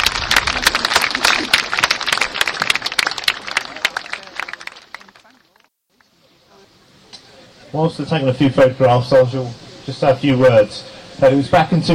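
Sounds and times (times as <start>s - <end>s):
crowd clapping: 0.0s - 5.7s
speech: 7.8s - 11.9s.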